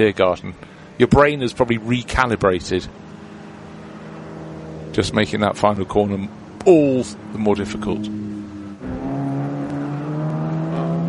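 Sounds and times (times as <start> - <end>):
speech: 0.0 - 3.0, 4.9 - 8.3
course vehicle engine droning on a race course: 0.0 - 11.0.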